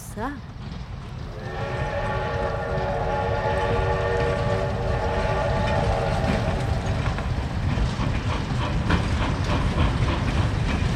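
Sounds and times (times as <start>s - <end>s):
rhythmic clatter of train wheels: 0.0s - 10.9s
steam locomotive pulling an express train roaring into a station: 0.0s - 10.9s
speech: 0.2s - 0.8s
steam locomotive horn: 1.2s - 7.4s.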